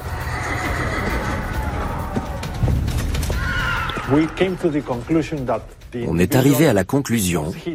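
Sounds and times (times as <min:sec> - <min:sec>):
horse whinnying: 0:00.0 - 0:02.4, 0:03.3 - 0:04.4
speech: 0:04.1 - 0:07.7.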